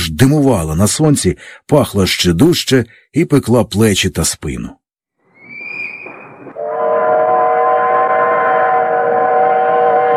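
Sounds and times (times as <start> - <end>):
speech: 0.2 - 4.8
thin high train whistle: 5.3 - 10.1
heavy train rumbling past: 6.4 - 10.1.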